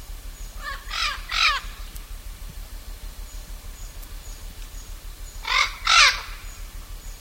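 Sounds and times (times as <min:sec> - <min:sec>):
blue-fronted amazon giving coarse grating squawks: 0:00.6 - 0:01.7, 0:05.4 - 0:06.4.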